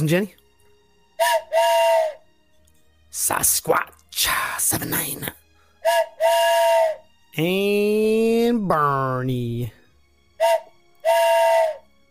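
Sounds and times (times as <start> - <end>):
speech: 0.0 - 0.4, 1.2 - 2.2, 3.2 - 9.8, 10.4 - 11.8
steam train whistle toots: 1.2 - 2.2, 5.8 - 7.0, 10.4 - 11.9.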